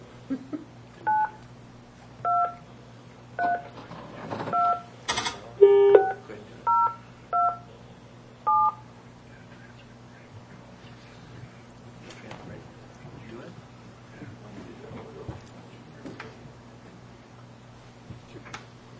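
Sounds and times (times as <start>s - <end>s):
low steady hum: 0.0s - 18.9s
cell phone keypad dialing tones: 2.2s - 2.6s, 5.6s - 7.6s, 8.5s - 8.8s.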